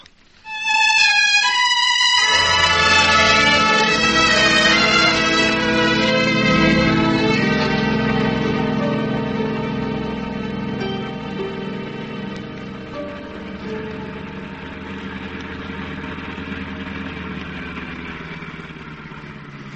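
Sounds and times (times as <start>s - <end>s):
car engine idling as car stops: 0.5s - 19.7s.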